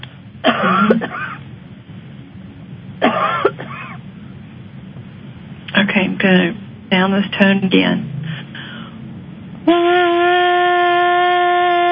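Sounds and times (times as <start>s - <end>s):
steady low hum: 0.0s - 11.9s
harsh chesty coughs: 0.4s - 1.4s, 3.0s - 4.0s
speech: 6.2s - 8.1s.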